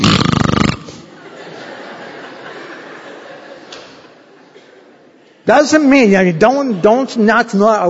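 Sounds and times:
voice imitating a loud rattling snore: 0.0s - 1.0s
laughter: 0.9s - 5.2s
speech: 5.5s - 7.8s.

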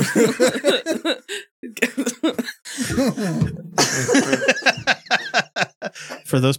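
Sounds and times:
person coughing in a fit: 0.0s - 1.2s, 1.8s - 4.5s
choked laughter: 0.0s - 6.2s
speech: 0.1s - 2.1s, 6.3s - 6.5s.

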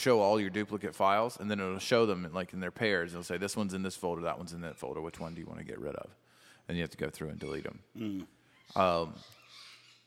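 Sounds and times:
speech: 0.0s - 9.6s
harsh bird squawk in a fight: 4.6s - 5.8s, 7.2s - 10.0s.

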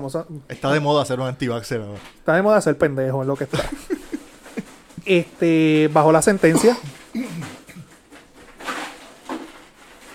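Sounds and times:
speech: 0.0s - 3.9s, 5.1s - 6.9s
laughter: 3.5s - 4.8s
hand rummaging through ice in a beer cooler: 7.0s - 10.1s.

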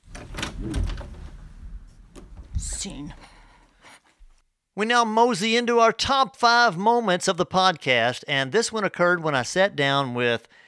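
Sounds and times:
door being pulled open with a scraping rattle: 0.0s - 2.9s
speech: 2.8s - 3.3s, 4.8s - 10.6s.

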